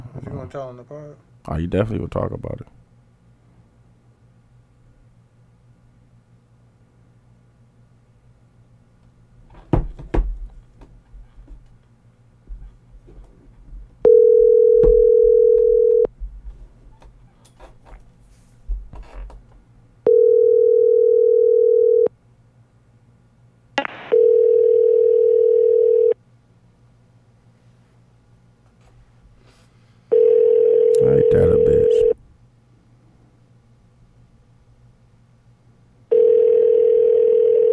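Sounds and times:
speech: 0.5 - 2.8
clicks and thumps: 9.5 - 11.8, 14.8 - 18.1
telephone dial tone while placing a call: 14.0 - 16.1, 20.1 - 22.1, 24.1 - 26.2, 30.1 - 32.2, 36.1 - 37.7.

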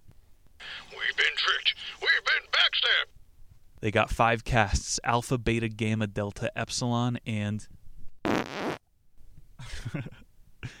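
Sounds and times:
speech: 1.4 - 3.2, 3.8 - 7.8, 9.8 - 10.2
fart sounds: 8.2 - 8.8.

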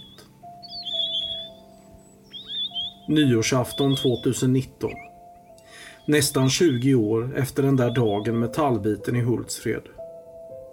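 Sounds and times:
Siberian parakeet whistled calls: 0.0 - 8.6
speech: 3.1 - 5.1, 6.1 - 10.0.

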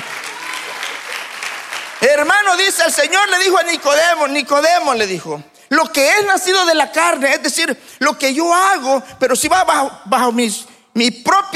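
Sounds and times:
congregation applauding: 0.0 - 4.6
speech: 2.0 - 11.5.

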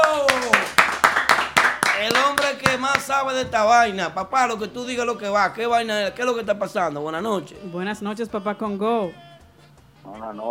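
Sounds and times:
hands clapping in a steady quick rhythm: 0.0 - 3.9
speech: 3.0 - 9.3, 10.1 - 10.4.

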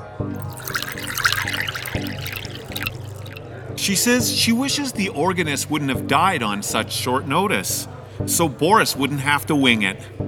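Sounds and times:
wine pouring into a glass under a table at a spelling bee: 0.4 - 5.4
speech: 3.8 - 10.2.

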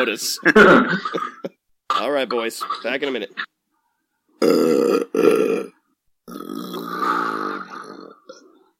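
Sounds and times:
speech: 0.0 - 3.5, 4.4 - 5.7
person belching: 4.4 - 8.6.

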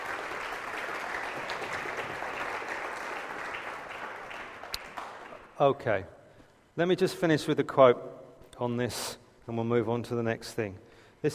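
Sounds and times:
audience applause: 0.0 - 5.5
speech: 5.6 - 6.2, 6.8 - 11.3.

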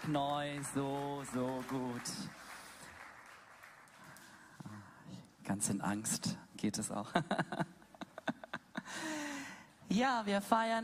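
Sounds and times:
speech: 0.0 - 2.4, 5.5 - 7.8, 9.9 - 10.8
crowd clapping: 0.0 - 4.6
laughter: 7.2 - 8.9.

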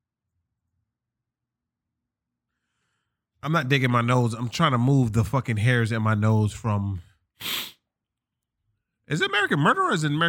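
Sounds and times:
speech: 3.4 - 7.6, 9.1 - 10.2
sneeze: 7.4 - 7.8.

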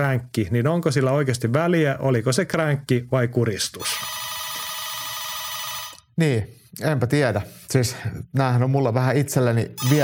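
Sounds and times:
speech: 0.0 - 4.3, 6.2 - 10.0
mobile phone ringtone: 3.8 - 6.1, 9.8 - 10.0.

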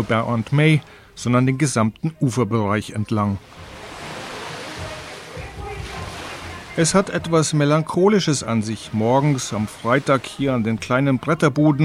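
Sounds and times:
speech: 0.0 - 3.6, 6.8 - 11.8
waves crashing against a concrete terrace edge: 3.4 - 11.0.

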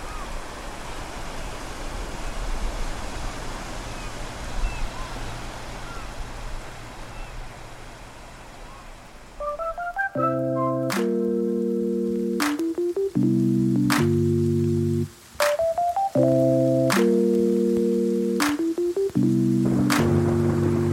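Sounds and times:
sea waves washing on a sandy spit: 0.0 - 20.9.

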